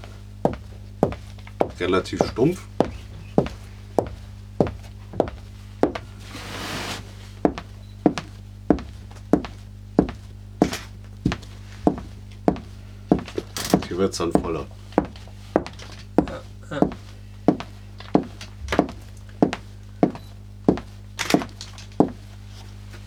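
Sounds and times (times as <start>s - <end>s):
low constant hum: 0.0s - 23.0s
soft shuffling: 0.0s - 23.0s
footsteps of shoes on a hard floor: 0.4s - 23.0s
speech: 1.8s - 2.7s, 14.1s - 14.8s.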